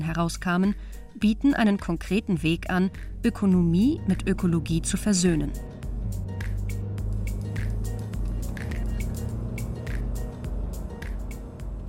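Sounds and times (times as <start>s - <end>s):
speech: 0.1s - 6.5s
car driving along a road in the far south of the Black Forest: 2.9s - 11.8s.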